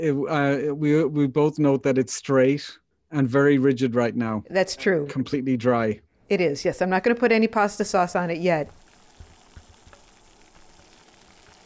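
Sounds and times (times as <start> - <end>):
speech: 0.0 - 8.8
water heating and starting to boil in a pot: 7.6 - 11.6.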